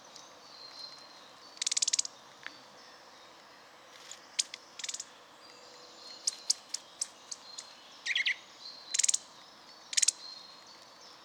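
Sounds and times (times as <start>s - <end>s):
Eurasian nuthatch Sitta europaea giving sharp high ticking notes: 1.6s - 2.1s, 4.4s - 5.1s, 6.2s - 9.3s, 9.9s - 10.2s.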